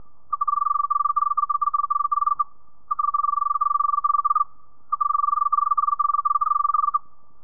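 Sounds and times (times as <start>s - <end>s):
Texas field cricket chirping: 0.0s - 7.4s.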